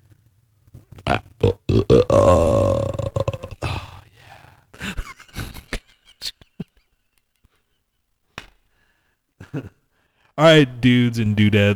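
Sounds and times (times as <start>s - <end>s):
loud burp with low rumbling croak: 1.1s - 4.0s
speech: 10.4s - 11.7s.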